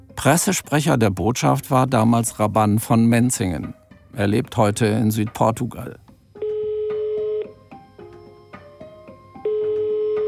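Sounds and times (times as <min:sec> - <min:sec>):
speech: 0:00.2 - 0:06.0
telephone ringback tone as an outgoing call is placed: 0:06.4 - 0:07.6, 0:09.4 - 0:10.2.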